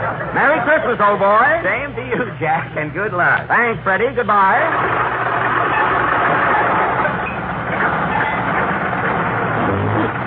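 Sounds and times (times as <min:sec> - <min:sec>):
speech: 0:00.4 - 0:05.2
rough sputtering old car engine running: 0:03.0 - 0:10.2.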